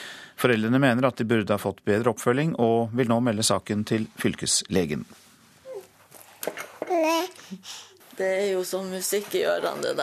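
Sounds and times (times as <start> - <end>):
speech: 0.4 - 5.3, 6.4 - 10.0
baby babbling and cooing happily: 5.7 - 5.9, 6.8 - 8.0.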